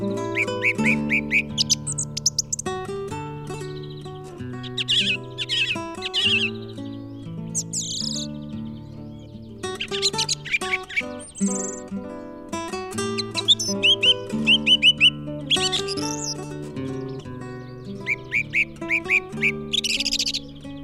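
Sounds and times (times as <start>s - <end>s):
song thrush singing in a garden: 0.0s - 2.8s, 3.6s - 8.3s, 9.2s - 11.9s, 13.0s - 20.6s.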